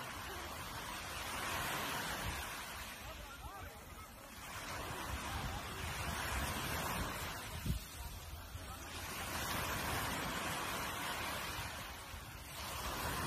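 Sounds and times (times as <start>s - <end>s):
ocean waves breaking on the shore: 0.0s - 13.2s.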